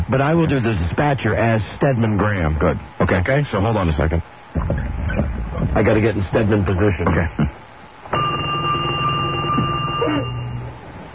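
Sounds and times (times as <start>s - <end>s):
speech: 0.1s - 7.6s
old-style telephone ringing: 8.1s - 10.6s.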